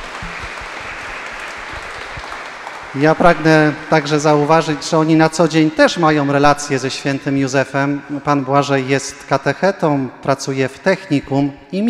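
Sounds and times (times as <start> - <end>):
audience applause at a religious gathering honouring a saint: 0.0 - 6.0
speech: 2.9 - 11.8.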